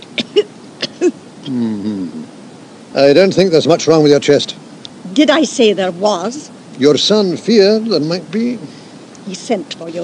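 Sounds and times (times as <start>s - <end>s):
person coughing: 0.2s - 2.1s
drawn-out voiced throat clearing rasp: 0.2s - 2.2s
speech: 1.5s - 2.3s, 3.0s - 4.6s, 5.2s - 10.0s.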